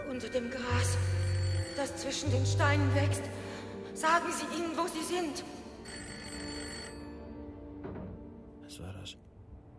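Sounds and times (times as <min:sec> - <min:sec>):
speech: 0:00.2 - 0:03.4, 0:04.0 - 0:05.6
telephone bell ringing: 0:00.6 - 0:02.5, 0:05.8 - 0:07.5.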